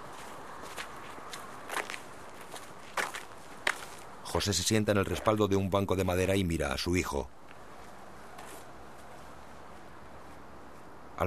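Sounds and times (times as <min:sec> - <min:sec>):
boy's footsteps crunching in a park: 0:00.0 - 0:05.5, 0:07.4 - 0:10.8
steady outdoor hiss: 0:00.0 - 0:11.2
speech: 0:04.3 - 0:07.4.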